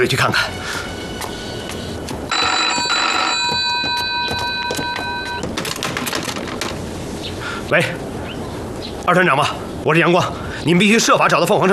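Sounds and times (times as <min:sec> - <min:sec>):
speech: 0:00.0 - 0:00.6, 0:07.7 - 0:08.0, 0:09.1 - 0:11.7
telephone ringing with a bright buzzing electronic tone: 0:02.3 - 0:06.0
noisy background of clicks and rustling: 0:04.2 - 0:06.9.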